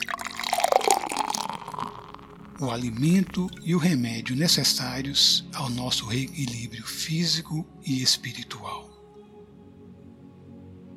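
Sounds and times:
water pouring into a drinking glass: 0.0s - 3.8s
speech: 2.6s - 8.8s.

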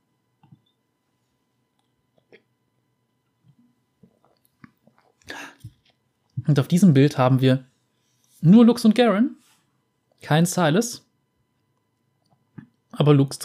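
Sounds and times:
person sipping a drink at a microphone: 4.0s - 6.0s
speech: 6.5s - 7.7s, 8.4s - 9.4s, 10.2s - 11.0s, 13.0s - 13.4s.

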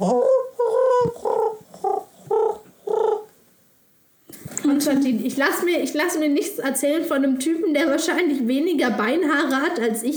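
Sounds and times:
speech: 0.0s - 0.3s, 4.8s - 10.1s
pigeon cooing: 0.0s - 3.3s.

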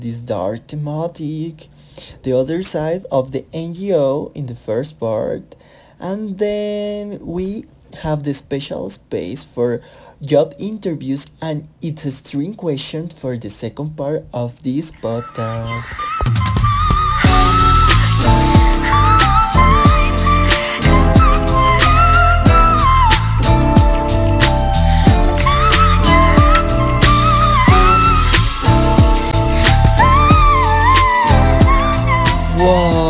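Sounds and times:
speech: 0.0s - 16.5s
pop song with female whistle-register singing: 15.0s - 33.0s.

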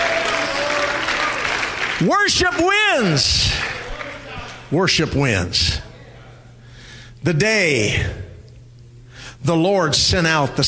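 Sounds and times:
large church audience clapping in worship: 0.0s - 4.4s
speech: 2.0s - 3.7s, 4.7s - 5.9s, 7.2s - 8.2s, 9.4s - 10.6s.

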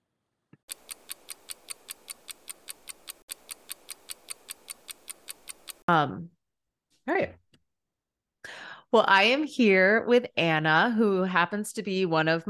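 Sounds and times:
clock ticking: 0.7s - 5.9s
speech: 5.9s - 6.4s, 7.1s - 7.4s, 8.9s - 12.4s.

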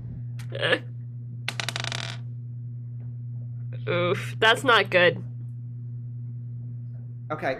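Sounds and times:
steady low hum: 0.0s - 7.5s
speech: 0.5s - 1.0s, 3.9s - 5.3s, 7.3s - 7.5s
twenty-sided die clattering across a hard tabletop: 1.5s - 2.2s.

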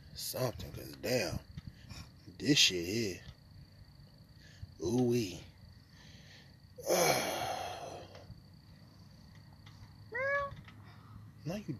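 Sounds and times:
speech: 0.2s - 3.3s, 4.8s - 5.5s, 6.8s - 7.3s, 11.4s - 11.7s
breathy rush of noise: 5.8s - 9.3s
cat meowing: 10.2s - 10.6s.

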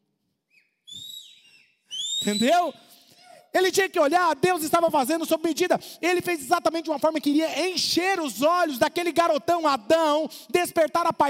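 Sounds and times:
person attempting to whistle: 0.6s - 2.9s
speech: 2.2s - 2.9s, 3.5s - 11.2s.

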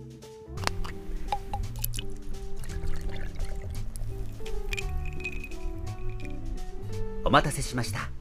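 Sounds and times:
30 percent awamori pouring over ice in a glass: 0.6s - 7.0s
awamori dripping: 0.6s - 8.1s
speech: 7.3s - 8.1s.

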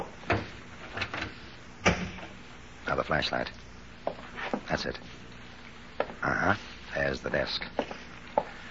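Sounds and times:
office door being eased shut: 0.0s - 2.4s
speech: 3.1s - 5.2s, 6.2s - 7.8s.

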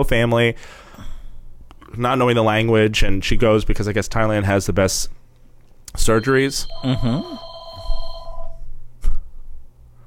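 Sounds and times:
speech: 0.0s - 0.8s, 1.9s - 5.2s, 5.9s - 7.5s
low hum: 0.0s - 10.0s
telephone ringing with an electronic trill: 6.1s - 8.6s.

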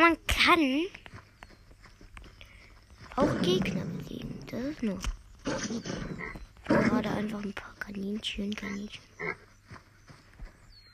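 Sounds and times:
speech: 0.0s - 1.0s, 3.2s - 9.5s
video game pig grunting and snorting: 3.1s - 7.3s, 9.2s - 9.4s.

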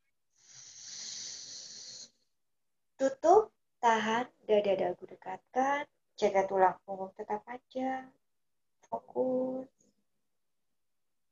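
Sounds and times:
slow inhale through the right nostril during a breathing exercise: 0.4s - 2.2s
speech: 4.0s - 8.2s, 8.9s - 9.8s.

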